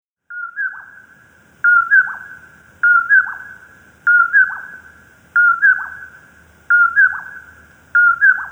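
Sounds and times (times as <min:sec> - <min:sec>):
common poorwill whistling its poor-will phrase: 0:00.3 - 0:01.0, 0:01.6 - 0:08.5.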